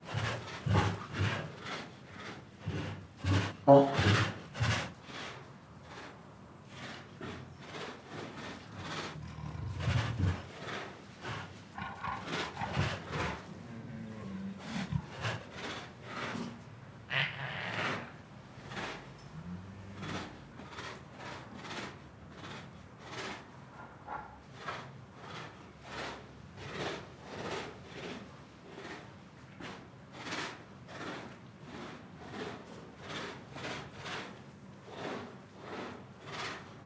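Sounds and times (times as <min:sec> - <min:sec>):
Siberian tigers growling: 0:00.0 - 0:36.8.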